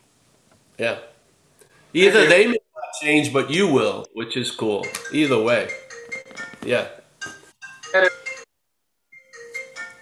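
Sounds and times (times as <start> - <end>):
speech: 0.8 - 1.1, 1.9 - 5.8, 6.6 - 7.0, 7.9 - 8.2
phone electronic ringtone melody: 4.8 - 6.6, 7.2 - 8.5, 9.1 - 10.0.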